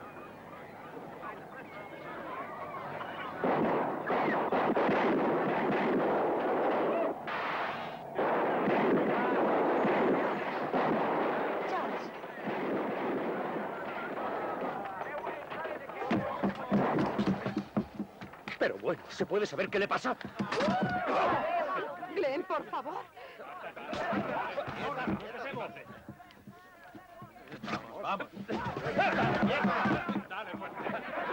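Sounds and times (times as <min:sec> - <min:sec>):
heavy gunfire during a whale hunt: 0:03.4 - 0:17.3
speech: 0:18.6 - 0:21.6, 0:22.2 - 0:26.0, 0:28.0 - 0:31.3
laughter: 0:20.1 - 0:31.3.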